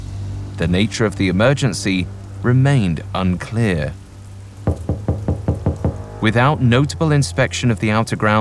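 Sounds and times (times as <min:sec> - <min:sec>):
speech: 0:00.6 - 0:04.0, 0:06.2 - 0:08.3
firm knocking on a door: 0:04.7 - 0:06.1.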